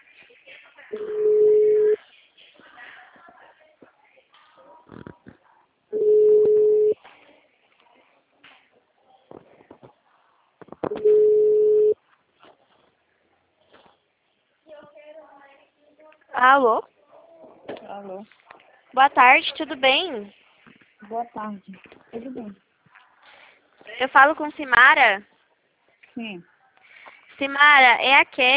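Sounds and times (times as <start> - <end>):
telephone ringback tone while a call is placed: 1.0 - 2.0, 6.0 - 7.0, 10.9 - 12.0
speech: 19.0 - 20.5, 21.1 - 22.7, 24.0 - 25.3, 26.2 - 26.5, 27.4 - 28.5.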